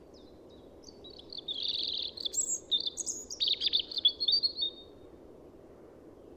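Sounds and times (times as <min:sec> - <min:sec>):
European robin Erithacus rubecula song with warbling and trills: 0:00.0 - 0:04.9
faint low background hiss: 0:00.0 - 0:06.3.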